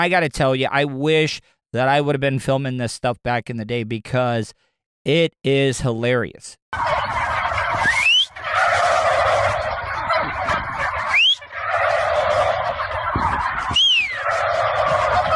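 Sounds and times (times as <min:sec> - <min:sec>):
speech: 0:00.0 - 0:07.2
turkey gobbling: 0:06.7 - 0:15.3.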